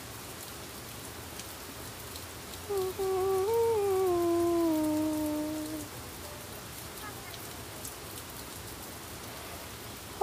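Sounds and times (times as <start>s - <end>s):
pouring rain: 0.0s - 10.2s
long wavering tonal cry: 2.7s - 5.9s.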